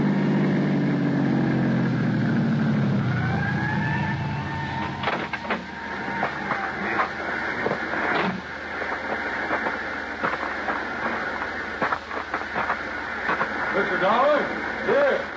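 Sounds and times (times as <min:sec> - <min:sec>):
ambulance engine rumbling: 0:00.0 - 0:15.3
ambulance siren wailing with rising gliding tones: 0:01.2 - 0:08.8.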